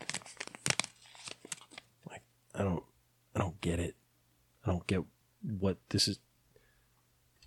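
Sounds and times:
paper crinkling close to the microphone: 0.0s - 1.9s
speech: 3.6s - 4.0s, 4.9s - 6.3s.

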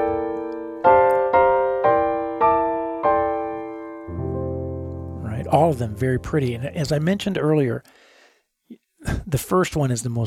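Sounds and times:
piano playing a melody harmonized with chordal voicings: 0.0s - 7.6s
speech: 5.7s - 8.0s, 8.7s - 10.2s.

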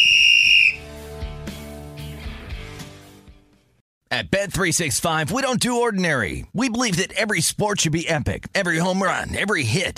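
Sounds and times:
sharp piercing whistle blast: 0.0s - 0.9s
speech: 4.2s - 9.9s.

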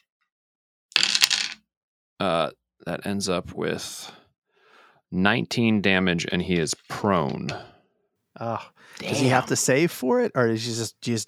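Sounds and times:
several eight-sided dice clattering across a table: 1.0s - 1.6s
speech: 2.2s - 4.2s, 5.1s - 7.7s, 8.4s - 11.2s.

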